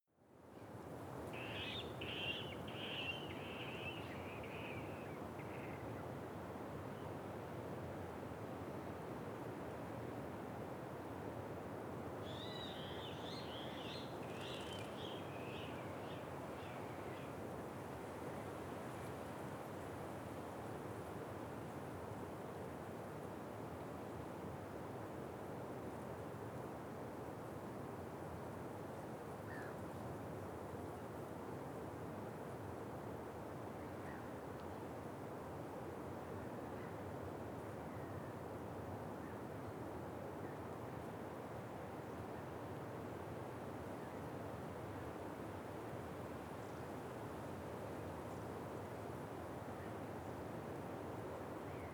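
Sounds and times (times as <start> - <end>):
quiet wind: 0.2 - 51.9.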